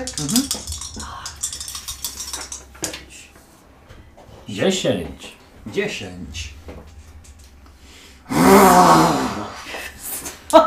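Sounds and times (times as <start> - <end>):
speech: 0.1 - 1.2, 4.5 - 6.6
person imitating a dragon's roar of disappointment: 8.3 - 9.6.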